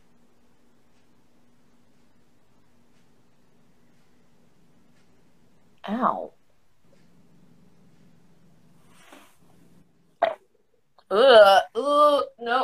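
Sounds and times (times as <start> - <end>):
faint hum: 0.0 - 12.6
speech: 5.8 - 6.4, 11.1 - 12.6
burp: 10.2 - 10.4.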